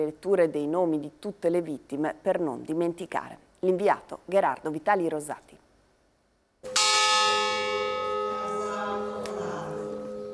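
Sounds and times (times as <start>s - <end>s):
speech: 0.0s - 5.6s
deep memorial bell tolling: 6.7s - 10.3s.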